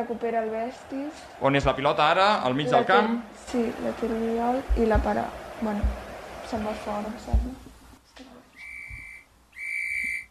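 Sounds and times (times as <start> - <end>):
speech: 0.0 - 8.3
referee's whistle blasts ending the first half of a match: 8.6 - 10.2.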